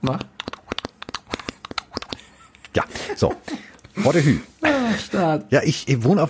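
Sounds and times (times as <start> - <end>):
speech: 0.0 - 0.4, 2.8 - 6.2
person imitating a horse with sharp mouth clicks: 0.0 - 2.8.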